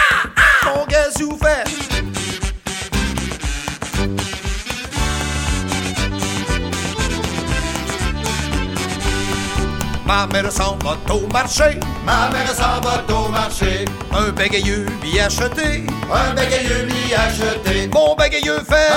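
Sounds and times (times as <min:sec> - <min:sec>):
harsh crow cawing: 0:00.0 - 0:00.8
busy instrumental backing with a steady rhythmic beat: 0:00.6 - 0:18.9
speech: 0:10.1 - 0:18.9.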